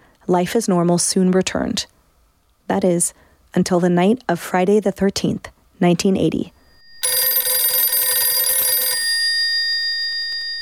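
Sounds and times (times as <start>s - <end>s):
speech: 0.3s - 2.0s, 2.7s - 6.6s
telephone bell ringing: 6.6s - 10.6s.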